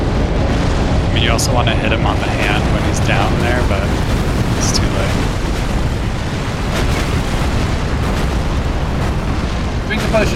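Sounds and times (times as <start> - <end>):
explosions and fire blasts in a video game: 0.0 - 10.3
speech: 1.3 - 5.5, 9.9 - 10.3.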